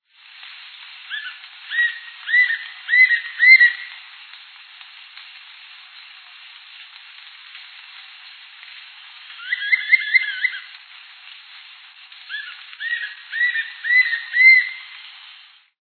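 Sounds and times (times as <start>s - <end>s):
capitao-de-saira-amarelo calling: 1.1s - 4.0s, 9.4s - 10.8s, 12.3s - 15.0s.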